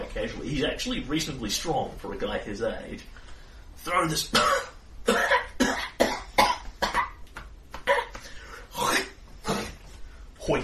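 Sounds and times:
speech: 0.2s - 5.3s, 10.5s - 10.6s
person imitating a frail elderly man coughing harshly: 4.3s - 7.2s, 7.8s - 9.8s.

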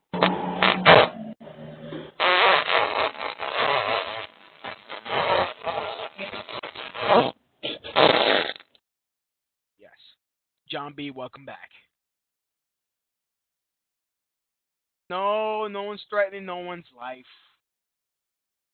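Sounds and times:
fart sound effect: 0.0s - 8.7s
speech: 10.8s - 11.8s, 15.1s - 17.5s.

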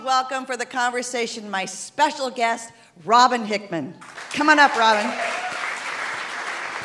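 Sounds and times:
speech: 0.2s - 5.3s
large crowd of women roaring and cheering: 4.6s - 6.8s.

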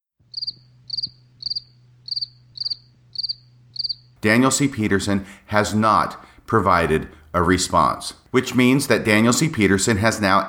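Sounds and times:
faint low hum: 0.2s - 10.4s
crickets chirping: 0.3s - 4.2s
speech: 4.2s - 10.4s.

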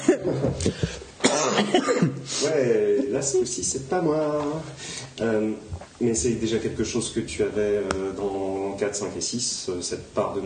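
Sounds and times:
person coughing: 0.1s - 2.3s
speech: 0.2s - 1.0s, 2.4s - 10.4s.

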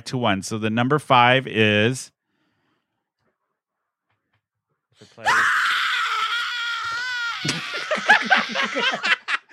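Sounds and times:
speech: 0.1s - 2.2s, 7.4s - 9.2s
woman screaming, piercing and high-pitched: 5.2s - 9.0s
laughter: 7.4s - 9.5s.

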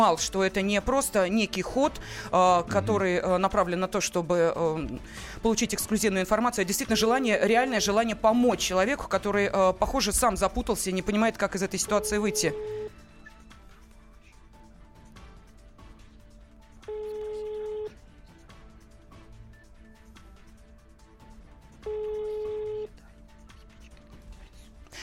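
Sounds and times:
speech: 0.0s - 12.8s
phone line ringback tones during a live broadcast: 11.8s - 13.0s, 16.9s - 18.0s, 21.8s - 22.9s.

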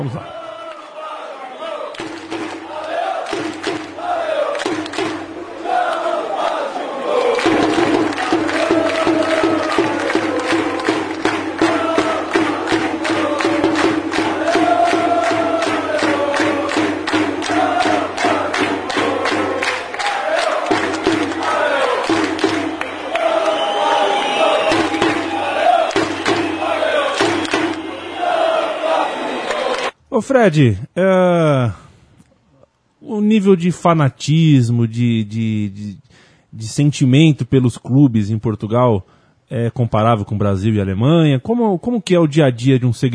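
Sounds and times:
speech: 0.0s - 0.4s, 30.2s - 31.8s, 33.2s - 43.1s
football fans chanting in a stadium at a Portugal versus Azerbaijan match: 0.0s - 30.0s
rhythmic clapping or beats: 1.9s - 29.9s.

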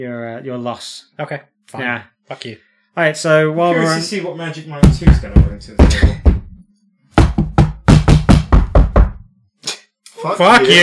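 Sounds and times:
speech: 0.0s - 6.3s, 10.2s - 10.8s
knocking on a door: 4.8s - 6.6s, 7.2s - 9.2s.

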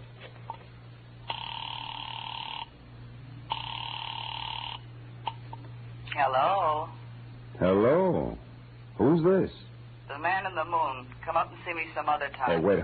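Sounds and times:
telephone ringback tones through a phone line: 1.2s - 2.8s, 3.5s - 5.5s
speech: 6.2s - 7.0s, 7.6s - 8.4s, 9.0s - 12.8s.

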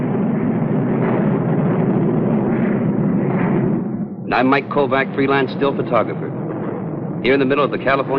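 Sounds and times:
jet-powered X-plane test aircraft roaring in the California desert: 0.0s - 8.1s
speech: 4.3s - 6.4s, 7.2s - 8.1s.

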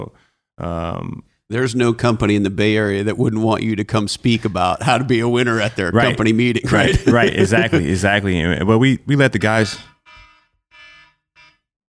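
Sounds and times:
speech: 0.0s - 9.9s
laughter: 5.3s - 8.3s
loud harsh electronic alarm beeps: 9.6s - 11.7s.

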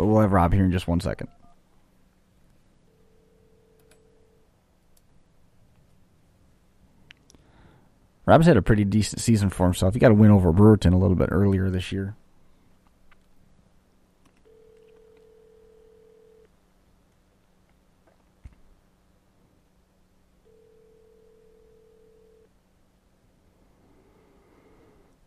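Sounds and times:
low hum: 0.0s - 25.2s
speech: 0.1s - 1.4s, 8.3s - 12.2s
telephone ringback tones: 2.9s - 4.4s, 14.4s - 16.5s, 20.4s - 22.5s.

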